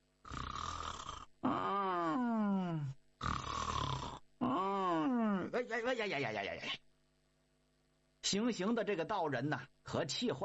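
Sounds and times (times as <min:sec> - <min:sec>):
storyteller's voice imitating the snoring of a sleeping character: 0:00.2 - 0:05.6
speech: 0:05.7 - 0:06.8, 0:08.3 - 0:10.4.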